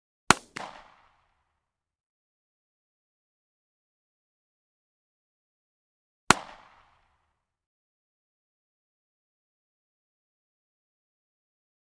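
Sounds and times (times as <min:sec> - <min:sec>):
9mm gunshot blast: 0:00.3 - 0:01.0, 0:06.3 - 0:06.8.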